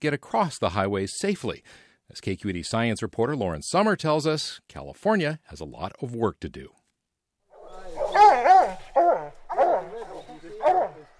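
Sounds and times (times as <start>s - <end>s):
speech: 0.0s - 6.8s
hound dogs baying on a mountain lion scent trail in the Santa Cruz hills: 7.6s - 11.1s.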